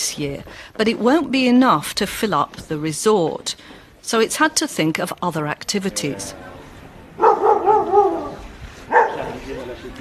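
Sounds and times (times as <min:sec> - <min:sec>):
faint outdoor background: 0:00.0 - 0:09.9
speech: 0:00.2 - 0:06.5
sled dogs barking and yelping: 0:07.2 - 0:09.4.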